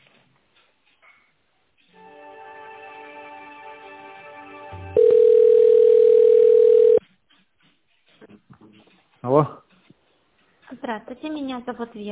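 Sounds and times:
buzzy telephone line hum while a call is transferred: 0:05.0 - 0:07.0
speech: 0:11.0 - 0:12.1.

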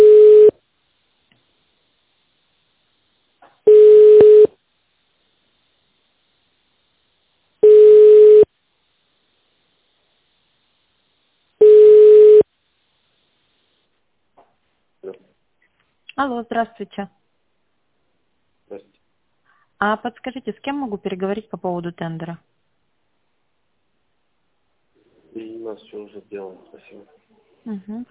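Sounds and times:
telephone line waiting tone while a caller is on hold: 0:00.0 - 0:00.5, 0:03.7 - 0:04.5, 0:07.6 - 0:08.5, 0:11.6 - 0:12.4
speech: 0:16.2 - 0:17.2, 0:19.8 - 0:22.5, 0:25.7 - 0:28.0.

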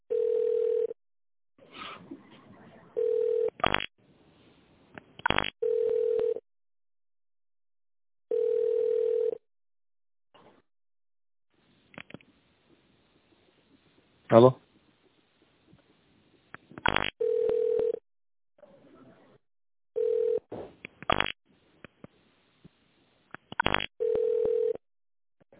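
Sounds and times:
mid-pitched telephone beeps while a call is transferred: 0:00.1 - 0:00.9, 0:03.0 - 0:03.5, 0:05.4 - 0:06.4, 0:08.3 - 0:09.4, 0:16.9 - 0:18.0, 0:20.0 - 0:20.4, 0:24.0 - 0:24.8
speech: 0:14.3 - 0:14.6.

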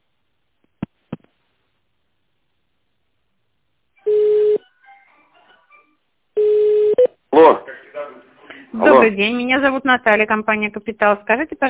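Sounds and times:
steady electronic telephone tone burst: 0:04.0 - 0:04.7, 0:06.4 - 0:07.1
speech: 0:09.0 - 0:11.6.

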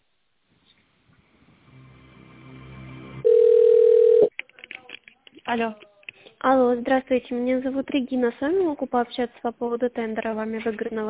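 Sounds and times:
low noise: 0:00.0 - 0:11.0
telephone line tone while connecting a call: 0:03.2 - 0:04.3
speech: 0:05.5 - 0:11.0.

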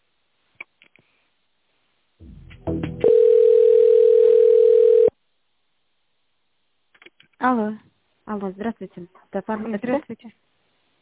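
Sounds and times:
loud steady single-pitch telephone tone during a call transfer: 0:03.0 - 0:05.2
speech: 0:07.5 - 0:10.5.

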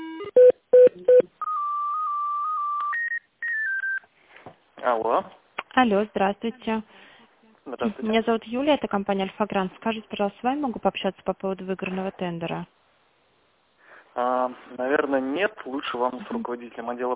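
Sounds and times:
long sustained telephone tone: 0:00.3 - 0:04.1
speech: 0:05.2 - 0:07.1, 0:07.8 - 0:12.7, 0:14.7 - 0:17.1.

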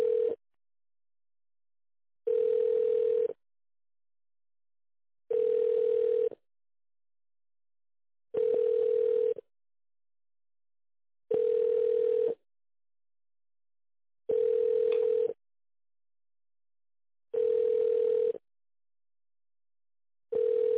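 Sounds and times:
telephone ringback tone while a call is being connected: 0:00.0 - 0:00.4, 0:02.3 - 0:03.4, 0:05.3 - 0:06.4, 0:08.4 - 0:09.4, 0:11.3 - 0:12.4, 0:14.3 - 0:15.4, 0:17.4 - 0:18.4, 0:20.3 - 0:20.7.

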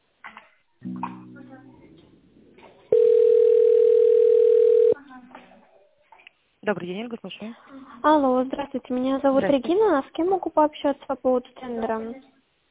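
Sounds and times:
speech: 0:00.8 - 0:01.3, 0:06.7 - 0:12.3
telephone ringback tone while a call is transferred: 0:02.9 - 0:05.0.

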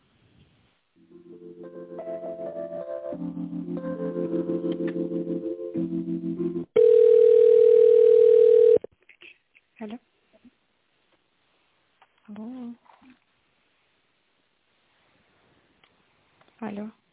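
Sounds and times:
telephone line tones while a call is transferred to a colleague: 0:06.8 - 0:08.9.

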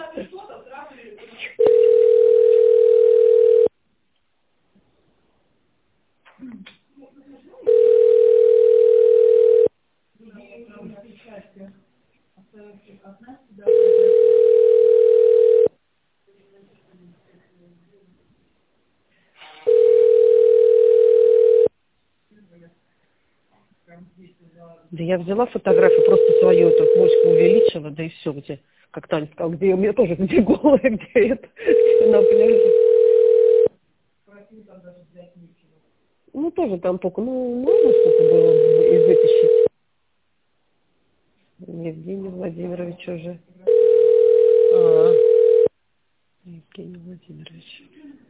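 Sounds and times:
telephone ringback tone on a call to a company: 0:01.6 - 0:03.7, 0:07.7 - 0:09.7, 0:13.7 - 0:15.7, 0:19.6 - 0:21.7, 0:25.7 - 0:27.8, 0:31.7 - 0:33.7, 0:37.7 - 0:39.7, 0:43.7 - 0:45.7
speech: 0:25.1 - 0:32.8, 0:36.7 - 0:39.7, 0:42.0 - 0:43.6, 0:46.8 - 0:48.0.

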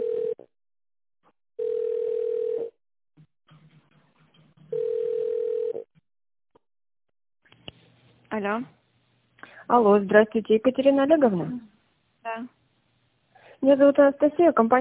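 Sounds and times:
telephone ringing tone on the line while a call is being connected: 0:00.0 - 0:00.5, 0:01.6 - 0:02.8, 0:04.7 - 0:05.9
faint clicks and telephone line noise: 0:07.5 - 0:08.2
speech: 0:08.4 - 0:08.8, 0:09.7 - 0:11.7, 0:13.6 - 0:14.8.

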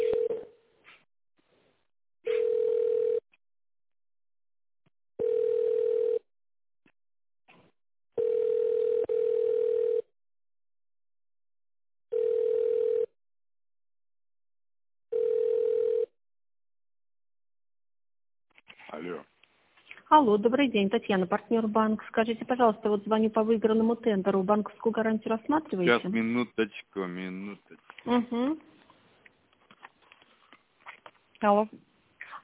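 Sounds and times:
telephone ringback tone during a call transfer: 0:00.0 - 0:00.4, 0:02.3 - 0:03.2, 0:05.2 - 0:06.2, 0:08.2 - 0:10.1, 0:12.1 - 0:13.1, 0:15.1 - 0:16.1
speech: 0:20.1 - 0:28.7, 0:31.4 - 0:31.8.

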